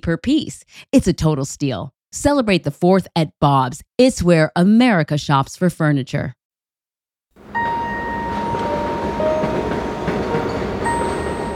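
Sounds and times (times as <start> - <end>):
speech: 0.0 - 6.4
elevated J subway train in Queens New York roaring past: 7.4 - 11.5.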